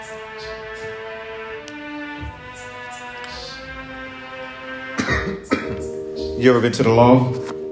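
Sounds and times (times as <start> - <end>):
person coughing: 5.0 - 5.8
speech: 6.4 - 7.5.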